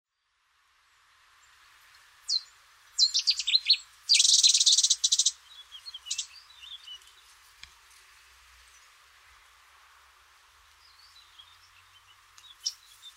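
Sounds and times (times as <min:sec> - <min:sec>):
Cetti's warbler singing: 0:01.9 - 0:07.3, 0:10.8 - 0:13.1.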